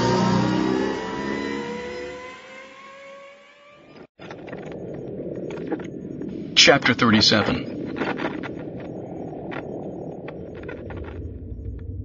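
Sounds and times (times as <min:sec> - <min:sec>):
engine revving as throttle is squeezed: 0:00.0 - 0:04.1
steady rumbling noise: 0:04.3 - 0:12.0
speech: 0:06.6 - 0:07.7.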